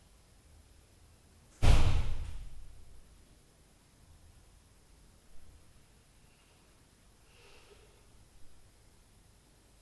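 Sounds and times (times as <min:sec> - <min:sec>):
door at night: 0:01.6 - 0:02.7.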